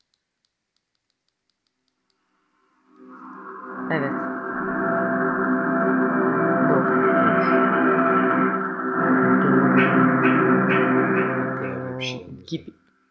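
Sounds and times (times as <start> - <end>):
steady 256 Hz humming tone with layered overtones: 2.6 - 12.4.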